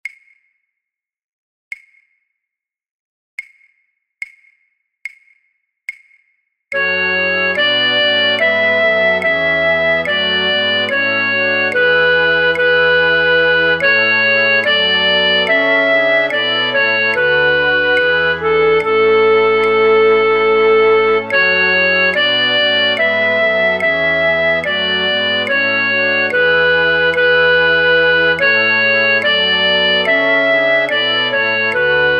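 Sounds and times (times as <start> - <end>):
flute orchestra playing: 6.8 - 32.1.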